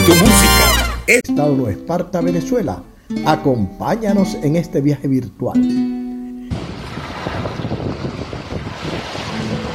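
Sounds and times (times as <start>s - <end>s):
speech: 0.0s - 0.5s, 1.1s - 6.6s
steady roar of surf at a windsurfing and kitesurfing beach: 6.5s - 9.7s
strong wind gusts buffeting the microphone at a windsurfing beach: 6.5s - 9.7s.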